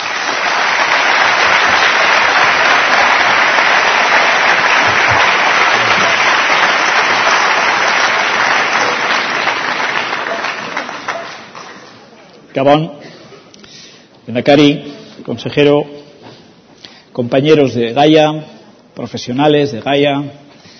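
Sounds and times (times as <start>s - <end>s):
audience applause at a 25th anniversary celebration event: 0.0s - 12.2s
speech: 12.6s - 13.0s, 14.3s - 16.0s, 17.2s - 20.4s.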